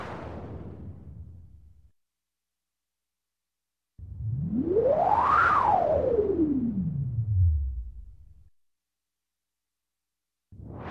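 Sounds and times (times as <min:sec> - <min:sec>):
long electronic space whoosh: 0:04.0 - 0:08.5.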